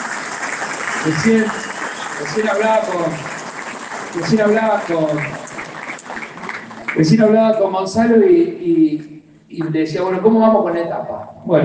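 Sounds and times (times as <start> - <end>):
audience applause: 0.0 - 7.6
voices calling out and chattering: 0.9 - 7.2
speech: 1.0 - 3.3, 4.1 - 5.4, 6.9 - 11.6.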